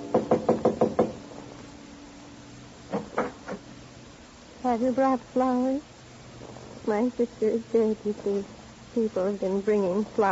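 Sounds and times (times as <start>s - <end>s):
knocking on a panel door of an apartment off a carpeted hallway: 0.1s - 1.2s
speech: 4.7s - 5.9s, 6.9s - 10.3s.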